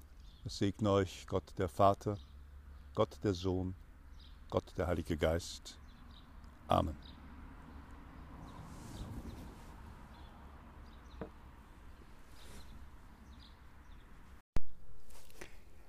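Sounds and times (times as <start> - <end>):
birdsong chirps in the evening sun on a mountain: 0.0 - 14.8
steady outdoor hiss: 0.0 - 15.8
speech: 0.4 - 2.3, 3.0 - 3.8, 4.5 - 5.8, 6.7 - 7.1
cars on the road: 3.7 - 14.4.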